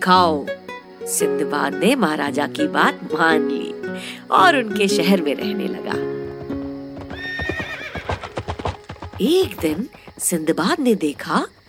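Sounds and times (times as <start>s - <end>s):
speech: 0.0s - 6.1s, 9.2s - 11.6s
horse hooves clopping: 4.5s - 11.6s
horse whinnying: 6.1s - 10.4s.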